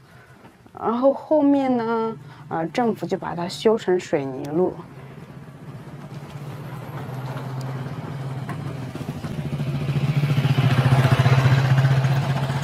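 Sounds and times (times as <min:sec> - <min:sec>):
speech: 0:00.8 - 0:05.0
motorcycle engine approaching along a concrete road in the countryside: 0:04.6 - 0:12.6.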